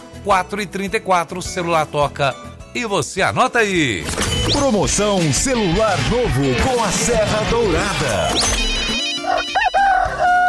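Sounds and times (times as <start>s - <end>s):
speech: 0.2s - 8.6s
rooster crowing: 9.2s - 10.4s.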